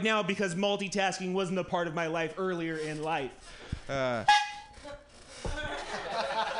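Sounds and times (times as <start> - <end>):
speech: 0.0 - 5.0
room noise: 0.0 - 6.5
brassy horn honk signalling time is up: 4.2 - 4.8
laughter: 5.6 - 6.5.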